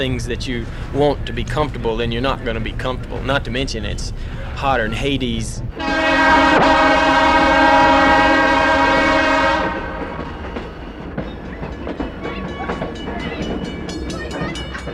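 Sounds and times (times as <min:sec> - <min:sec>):
speech: 0:00.0 - 0:07.8
passenger train rolling along the rails: 0:00.0 - 0:14.9
train horn blaring: 0:05.8 - 0:10.6.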